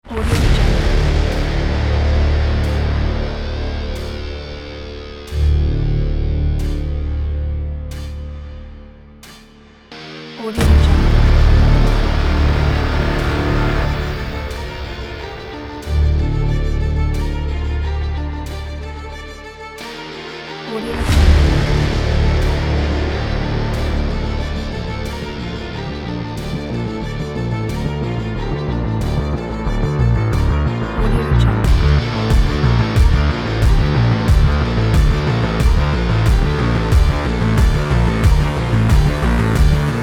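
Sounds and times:
epic dramatic rock trailer music: 0.0 - 40.0.

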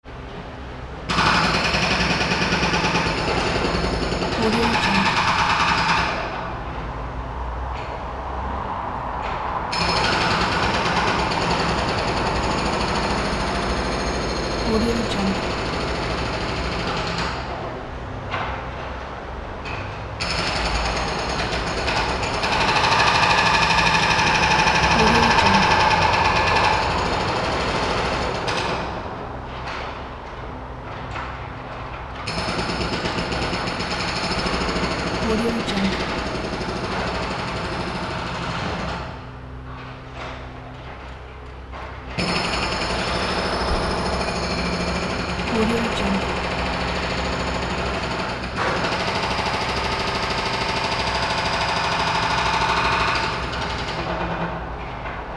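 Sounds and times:
city ambience: 0.1 - 48.8
jackhammer in the city: 1.1 - 6.4, 9.7 - 14.6, 15.4 - 17.6, 19.7 - 29.0, 32.2 - 35.2, 36.0 - 39.2, 42.2 - 54.6.

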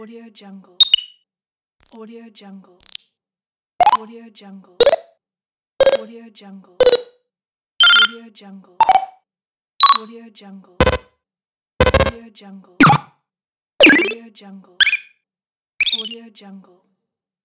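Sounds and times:
user interface sounds: 0.8 - 1.2, 6.8 - 7.1, 7.8 - 8.2, 8.8 - 9.2, 9.8 - 10.0, 10.8 - 11.1, 11.8 - 12.2, 12.8 - 13.1, 13.8 - 14.2, 14.8 - 15.1, 15.8 - 16.2.

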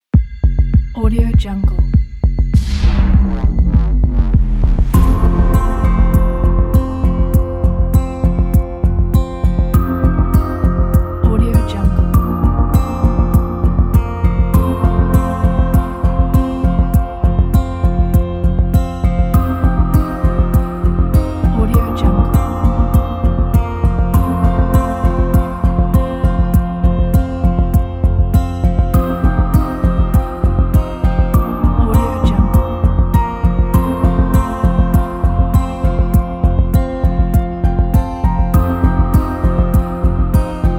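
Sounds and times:
ambient motivational corporate music: 0.2 - 40.7.

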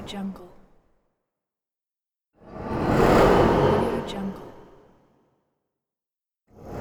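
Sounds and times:
unguided spaceship flybys: 2.7 - 4.7.

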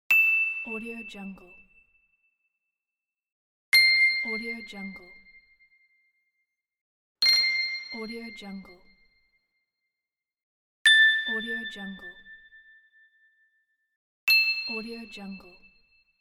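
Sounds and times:
bell ding: 3.8 - 4.7, 7.2 - 8.9, 10.9 - 12.8, 14.3 - 15.8.

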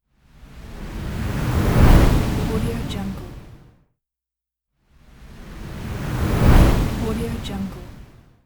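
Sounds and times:
windy flyby whoosh: 0.3 - 3.6, 5.1 - 8.2.

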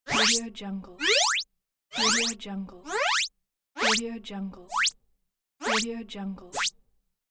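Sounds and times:
cartoon slide sounds: 0.1 - 0.4, 1.0 - 4.0, 4.7 - 5.0, 5.6 - 5.8.

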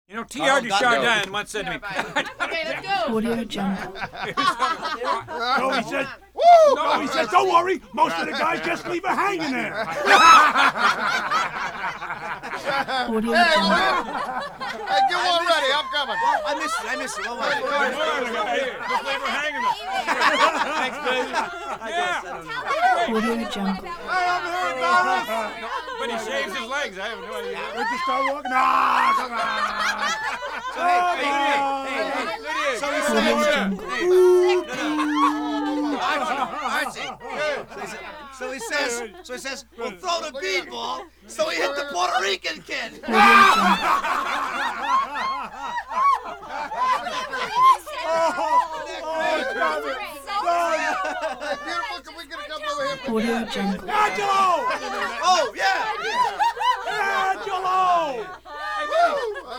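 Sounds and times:
constant rowdy bar conversation: 0.1 - 59.5
laughter: 0.5 - 39.2, 43.0 - 59.5
people hollering in a bar: 3.1 - 12.0, 12.6 - 26.3, 27.4 - 37.7, 43.0 - 51.7.

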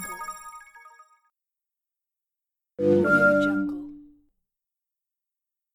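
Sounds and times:
phone notification sounds: 2.8 - 4.0.

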